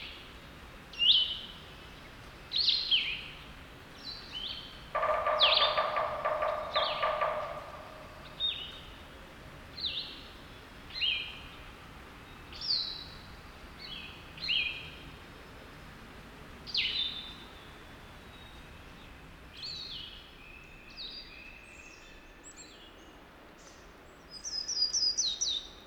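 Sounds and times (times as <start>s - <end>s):
warbler singing: 1.0s - 9.0s, 12.3s - 15.0s, 16.7s - 25.8s
sapsucker calling: 4.4s - 9.0s.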